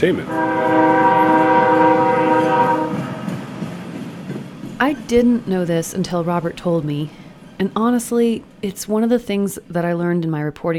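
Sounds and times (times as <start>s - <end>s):
speech: 0.0s - 1.1s, 4.8s - 10.7s
loud train horn blast: 0.0s - 3.5s
heavy rumble of rolling train cars passing by: 0.0s - 10.7s.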